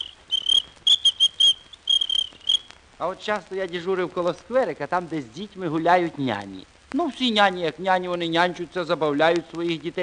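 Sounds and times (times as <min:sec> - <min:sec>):
small ladies' traffic police whistle blown in short shrill blasts: 0:00.0 - 0:02.7
speech: 0:03.0 - 0:10.0.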